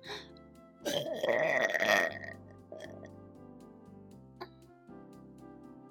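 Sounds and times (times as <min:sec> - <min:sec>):
loud drawn-out throaty burps: 0:00.9 - 0:02.3.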